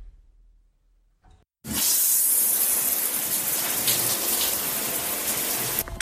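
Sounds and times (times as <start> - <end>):
shower water spraying: 1.7 - 5.8.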